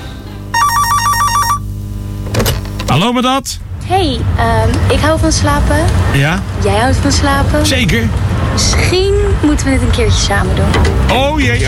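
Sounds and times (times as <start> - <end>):
low steady hum: 0.0 - 7.6
electronic telephone ringtone with warbling tones: 0.6 - 1.7
speech: 2.9 - 11.6.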